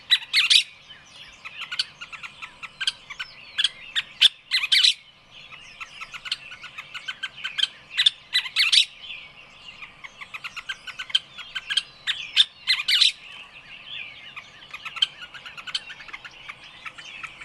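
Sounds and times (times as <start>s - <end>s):
rapid high bird twittering: 0.0s - 17.4s
loud harsh bird squawks: 1.5s - 5.0s, 5.8s - 9.0s, 9.8s - 13.2s, 14.3s - 17.4s.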